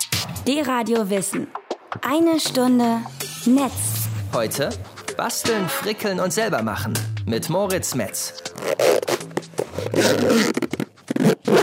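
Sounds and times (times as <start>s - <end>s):
speech: 0.5s - 9.0s, 9.8s - 11.6s
zipper being pulled open and shut: 8.5s - 11.6s.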